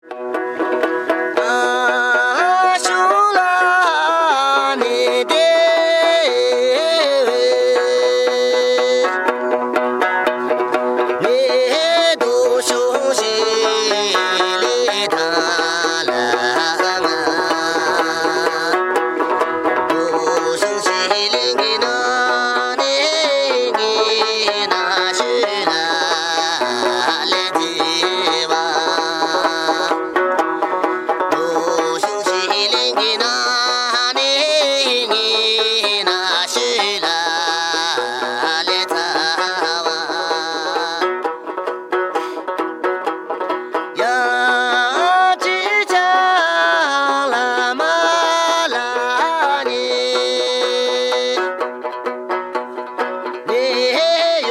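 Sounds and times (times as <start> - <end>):
Tibetan lute playing: 0.0 - 54.4.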